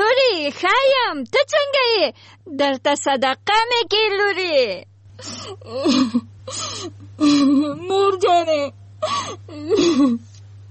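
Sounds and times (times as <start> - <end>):
low hum: 0.0 - 10.7
speech: 0.5 - 10.3
woman crying on a phone call: 5.2 - 10.3.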